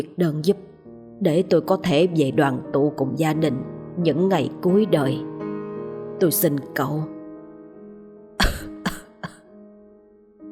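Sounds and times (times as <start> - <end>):
speech: 0.0 - 5.3, 6.2 - 7.2
man ill with cancer coughing violently, harsh rasping coughs: 8.4 - 9.4.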